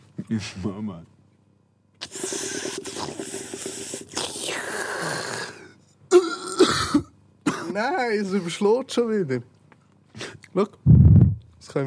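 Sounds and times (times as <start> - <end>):
speech: 0.3 - 1.2, 7.8 - 9.6, 10.6 - 11.0
person coughing and huffing into the microphone: 5.5 - 7.8.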